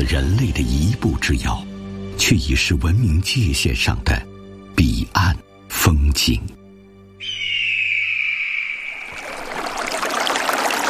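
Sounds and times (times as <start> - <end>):
speech: 0.0 - 6.6
sustained high whistling tone: 7.2 - 9.7
flowing river water: 8.6 - 10.8.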